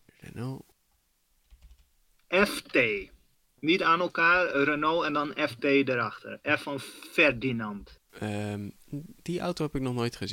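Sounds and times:
speech: 0.4 - 0.7, 2.4 - 10.3
typing on a computer keyboard: 1.4 - 1.9.

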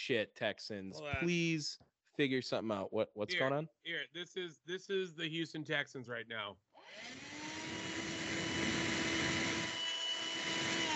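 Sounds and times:
speech: 0.0 - 7.4
vacuum cleaner running: 7.0 - 10.9.

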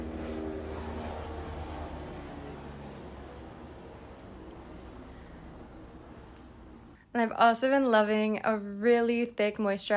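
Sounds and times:
helicopter droning overhead: 0.0 - 7.0
speech: 7.2 - 9.9.

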